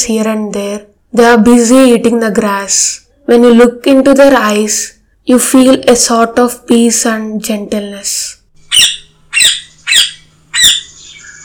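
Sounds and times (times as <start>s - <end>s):
speech: 0.0s - 8.4s, 9.4s - 9.6s
parrot screeching: 8.7s - 11.4s.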